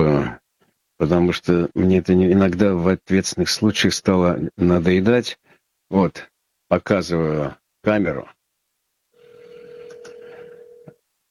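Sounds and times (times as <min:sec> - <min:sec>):
speech: 0:01.0 - 0:08.4
steady telephone dialing tone: 0:09.2 - 0:11.0.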